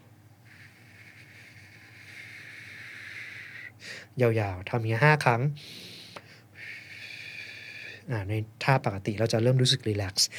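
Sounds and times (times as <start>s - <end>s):
pursed-lip exhale through a narrow mouth opening: 0.4s - 4.1s, 5.6s - 8.1s
speech: 4.2s - 5.8s, 8.1s - 10.3s.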